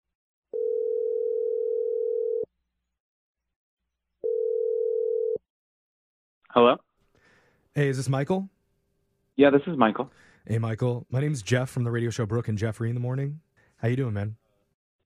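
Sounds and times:
long steady telephone ringing tones: 0.5 - 2.5, 4.2 - 5.4
speech: 6.5 - 6.9, 7.7 - 8.5, 9.4 - 14.4.

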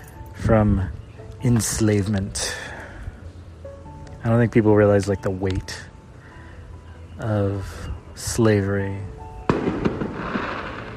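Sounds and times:
speech: 0.5 - 2.7, 4.2 - 5.9, 7.2 - 9.2
fireworks exploding outside for Juneteenth: 9.5 - 10.9.

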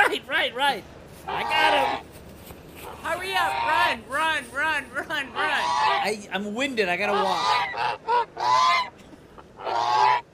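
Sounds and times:
speech: 0.2 - 2.1, 3.0 - 8.9
goose honking: 1.2 - 2.0, 2.8 - 4.0, 5.1 - 6.2, 7.0 - 9.0, 9.6 - 10.3.

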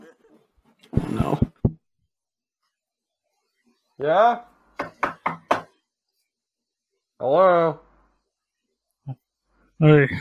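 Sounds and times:
speech: 4.0 - 4.5, 7.2 - 7.8, 9.8 - 10.1
knocking on a door: 4.8 - 5.8.

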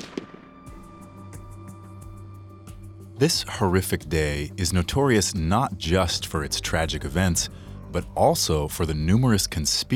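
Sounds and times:
single sharp gunshot: 0.0 - 0.8
speech: 3.2 - 9.9.

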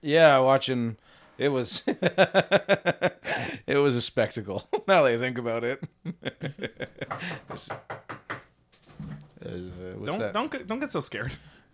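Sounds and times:
speech: 0.0 - 8.2, 9.4 - 11.7
firm knocks on a door: 7.0 - 9.1.

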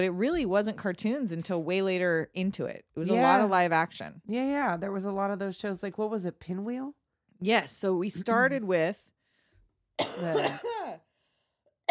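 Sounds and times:
speech: 0.0 - 9.1, 10.0 - 11.0
big throaty cough: 10.0 - 11.0.

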